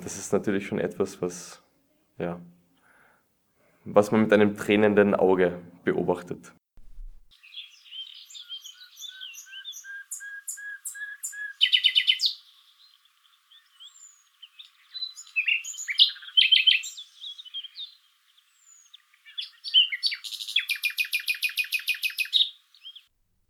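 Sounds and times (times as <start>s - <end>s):
speech: 0.0s - 2.6s, 3.8s - 6.6s
nightingale singing: 7.0s - 23.1s.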